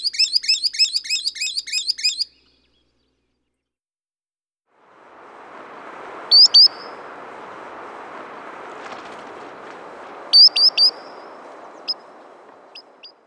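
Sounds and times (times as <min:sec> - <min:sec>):
solitary sandpiper calling with high thin whistles: 0:00.0 - 0:02.4, 0:04.9 - 0:13.2
steady low rushing background noise: 0:04.8 - 0:13.2.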